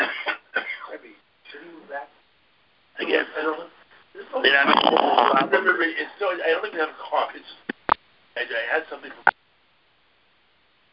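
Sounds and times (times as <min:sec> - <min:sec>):
rough coughs or throat clears: 0:00.0 - 0:00.9
speech: 0:04.6 - 0:07.7, 0:08.4 - 0:09.4.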